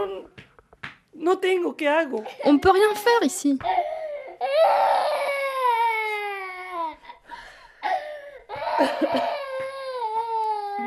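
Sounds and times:
speech: 1.2 - 5.3, 8.8 - 9.4
woman crying: 2.3 - 10.8.

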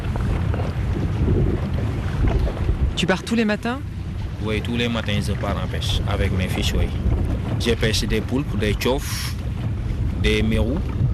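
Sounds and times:
fishing boat engine rumble at sea: 0.0 - 11.1
gusty wind buffeting at sea: 0.0 - 11.1
sea water rushing against a fishing boat: 0.0 - 11.1
speech: 3.0 - 9.4, 10.2 - 11.0.

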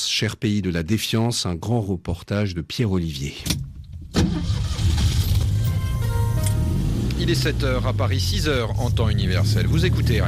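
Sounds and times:
speech: 0.2 - 4.3, 7.2 - 10.2
car road and engine rumble on a motorway: 3.6 - 10.2.

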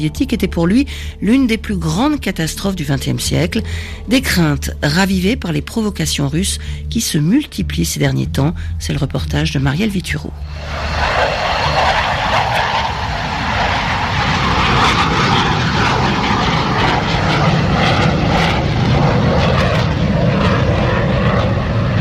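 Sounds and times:
speech: 0.0 - 11.4
fighter jets roaring overhead: 0.0 - 21.9.

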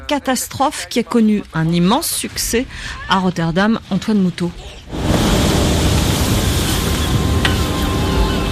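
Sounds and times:
speech: 0.1 - 5.0
surf churning: 4.4 - 8.5
strong wind blowing at the seashore by a sea dike on a Dutch beach: 4.9 - 8.5.

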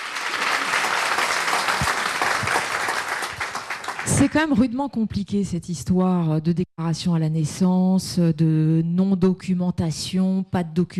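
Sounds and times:
room full of people applauding: 0.0 - 4.4
speech: 4.2 - 10.9.

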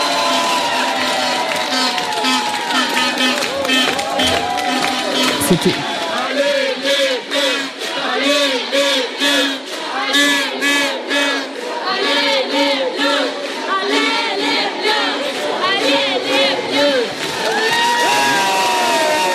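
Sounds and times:
crowd of fans cheering and whooping: 0.0 - 6.2, 17.1 - 19.3
large crowd of fans chanting outside a hotel: 0.0 - 19.3
speech: 5.5 - 5.9.

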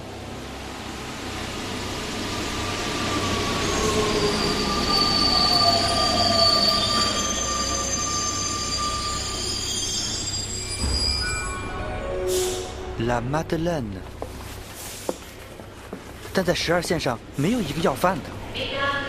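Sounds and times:
metro train rumbling through a station: 0.0 - 19.0
metro train wheels squealing: 2.6 - 11.8
speech: 13.1 - 14.2, 16.4 - 19.0.

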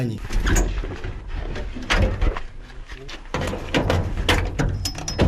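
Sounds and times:
rickety sheet-metal door shoved open scraping and rattling: 0.2 - 2.4, 3.3 - 5.2.

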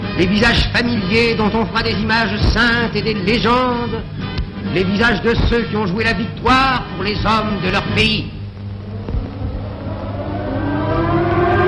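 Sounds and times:
speech: 0.2 - 8.4
low rumbling background: 8.4 - 11.6
air raid sirens wailing: 8.8 - 11.6.

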